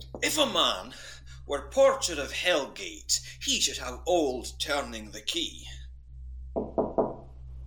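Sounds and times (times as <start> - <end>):
low steady hum: 0.0 - 7.6
speech: 0.2 - 5.8
knocking on a door: 6.6 - 7.3.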